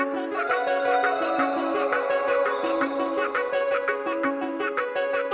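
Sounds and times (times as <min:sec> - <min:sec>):
morning piano ringtone: 0:00.2 - 0:05.3.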